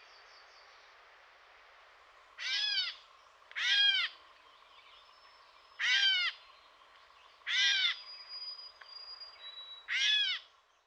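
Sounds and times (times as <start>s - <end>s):
Gray catbird giving harmonic down-slurred mewing notes: 2.4s - 3.0s, 3.6s - 4.1s, 5.8s - 6.4s, 7.5s - 8.0s, 9.9s - 10.4s.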